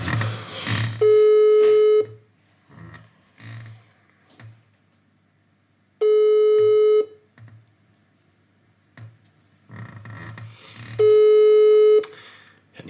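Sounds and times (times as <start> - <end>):
phone line ringback tone during a call: 1.0 - 2.2, 6.0 - 7.2, 11.0 - 12.0.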